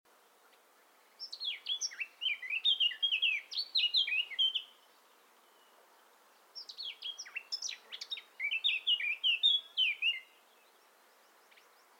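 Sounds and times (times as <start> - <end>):
faint background hiss: 0.1 - 11.9
Eurasian blackcap song, Sylvia atricapilla: 0.5 - 4.8, 6.6 - 10.9.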